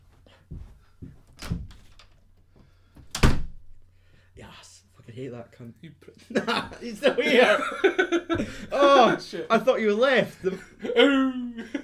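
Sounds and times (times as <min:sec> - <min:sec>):
door knocks and thumps: 0:01.4 - 0:02.0, 0:03.0 - 0:03.7
door slamming: 0:03.0 - 0:03.7
speech: 0:04.6 - 0:11.8
laughter: 0:06.1 - 0:11.8.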